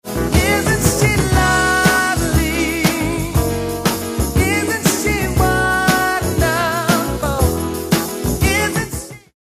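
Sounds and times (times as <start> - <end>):
ternary rhythm: 0.2 - 7.8.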